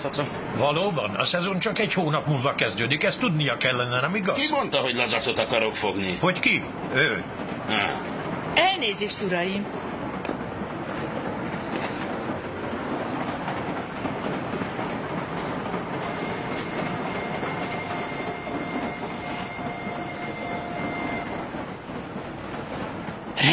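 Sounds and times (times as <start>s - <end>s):
speech: 0.0s - 8.1s, 8.8s - 9.9s
train rolling along rails with rumble and rattle: 0.0s - 23.5s
faint high whine: 16.0s - 21.7s.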